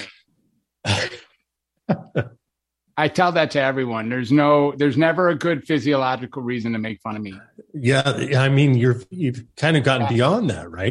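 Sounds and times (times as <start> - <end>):
harsh rasping hacking cough: 0.8 - 2.4
speech: 1.9 - 2.4, 3.0 - 10.8.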